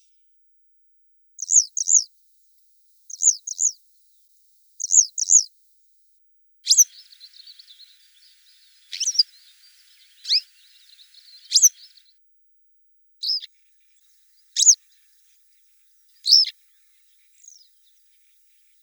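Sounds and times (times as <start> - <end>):
Motacilla flava calling: 6.7 - 12.1, 13.2 - 13.5, 14.5 - 14.9, 16.1 - 16.5.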